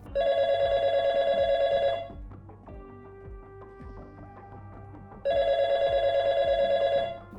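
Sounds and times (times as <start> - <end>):
telephone ringing in trilling bursts: 0.2 - 2.1, 5.3 - 7.3.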